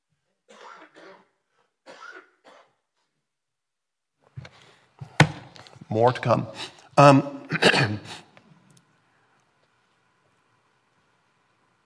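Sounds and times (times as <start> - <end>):
harsh coughs: 0.5 - 2.8, 7.5 - 8.3
speech: 5.9 - 8.2.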